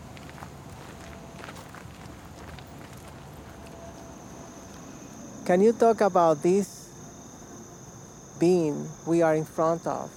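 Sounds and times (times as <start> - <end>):
footsteps walking outdoors on a walking tour in New York City: 0.0 - 6.1
hissing outdoor noise: 0.0 - 10.1
speech: 5.5 - 6.8, 8.4 - 10.1.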